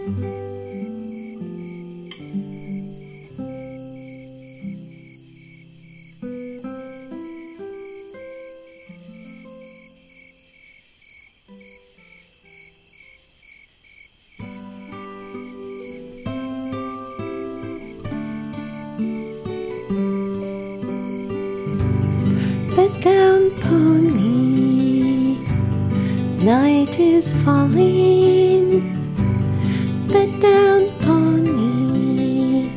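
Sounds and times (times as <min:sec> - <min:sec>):
crickets chirping at night: 0:00.0 - 0:32.7
speech: 0:00.1 - 0:00.4, 0:26.9 - 0:28.9
soft gentle lullaby melody of low plucked notes: 0:14.8 - 0:32.7.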